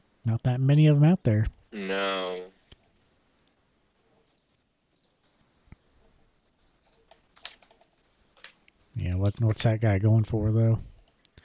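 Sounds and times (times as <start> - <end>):
speech: 0.2 - 2.5, 9.0 - 10.9
typing on a computer keyboard: 6.8 - 8.6.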